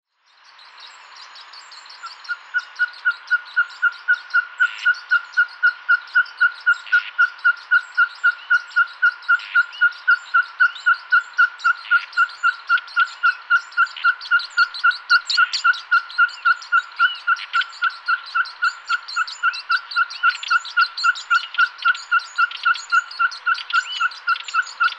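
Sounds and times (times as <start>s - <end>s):
Austral pygmy owl Glaucidium nana calling: 0.6s - 24.9s.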